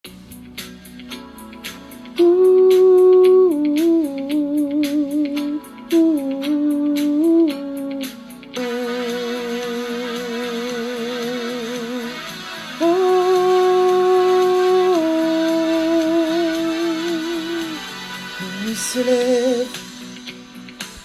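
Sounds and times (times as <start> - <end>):
person vocalising: 2.2 - 12.2, 12.8 - 17.9.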